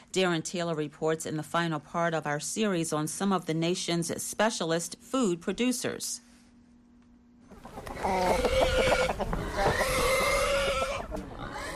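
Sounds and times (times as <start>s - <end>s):
speech: 0.2s - 6.3s, 7.7s - 9.7s
chickens clucking in a farmyard: 7.4s - 11.7s
pig grunts and squeals: 7.8s - 11.7s.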